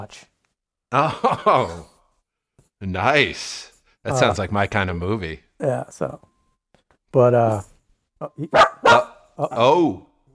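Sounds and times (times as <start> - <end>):
speech: 0.0 - 0.3, 0.9 - 1.9, 2.8 - 6.3, 7.1 - 10.1
dog barking: 8.4 - 9.3.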